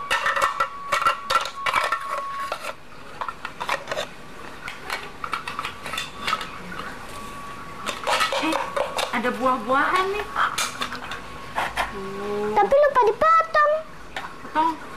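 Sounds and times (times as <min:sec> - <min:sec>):
plates and cutlery clattering and scraping: 0:00.1 - 0:07.2, 0:07.8 - 0:09.3, 0:09.9 - 0:11.9
speech: 0:09.3 - 0:10.7, 0:12.0 - 0:13.5, 0:14.5 - 0:14.8.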